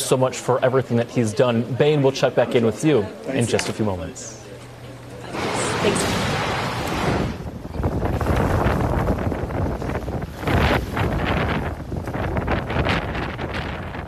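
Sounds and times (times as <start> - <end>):
speech: 0.1 - 4.4, 5.8 - 6.2
strong coastal wind buffeting the microphone: 5.4 - 14.0.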